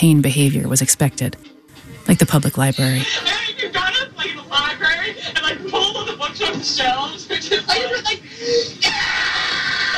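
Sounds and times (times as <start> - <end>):
speech: 0.0 - 3.4, 6.4 - 9.3
old tape recording hiss: 0.0 - 9.9
laughter: 3.0 - 9.9
child's high-pitched screams and shrieks on old tape recording: 8.8 - 9.9.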